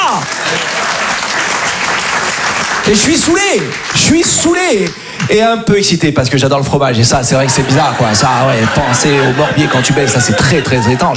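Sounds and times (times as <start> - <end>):
audience applause: 0.0 - 5.4, 7.2 - 11.1
speech: 2.9 - 11.1
laughter: 6.9 - 11.1.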